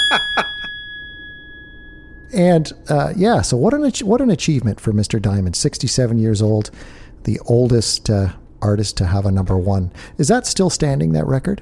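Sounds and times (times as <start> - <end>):
bell ringing with a metallic ring: 0.0 - 3.1
speech: 2.3 - 11.6.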